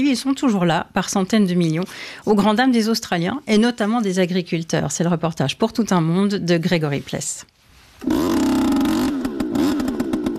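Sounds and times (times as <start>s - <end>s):
speech: 0.0s - 8.5s
converted leaf blower engine pumping carbon monoxide into rabbit burrows in Melbourne: 8.0s - 10.3s.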